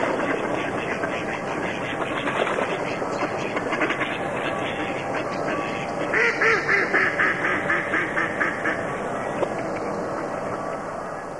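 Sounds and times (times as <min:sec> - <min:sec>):
duck quacking in harsh nasal calls: 0:00.0 - 0:08.9
steady background noise: 0:00.0 - 0:11.3.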